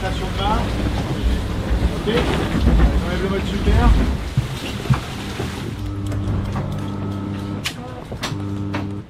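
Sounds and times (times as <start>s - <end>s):
wind and water noise: 0.0s - 8.3s
speech: 2.0s - 5.0s
sailboat autopilot ram actuator electric motor whirring at night: 5.2s - 9.0s.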